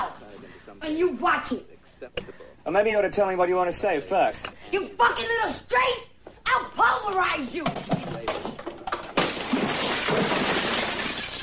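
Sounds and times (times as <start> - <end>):
speech: 0.7 - 8.5
liquor bottle smashing through studio recording booth window: 7.8 - 11.4.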